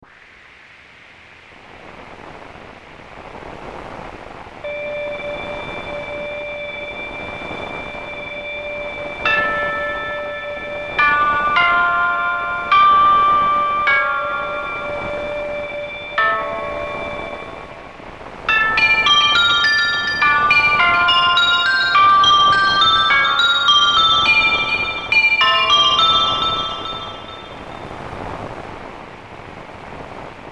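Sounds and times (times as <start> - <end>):
hissing bells: 4.7 - 28.5.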